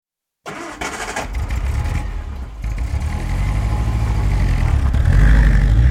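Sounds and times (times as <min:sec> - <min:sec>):
ambulance engine starting: 0:00.4 - 0:05.8.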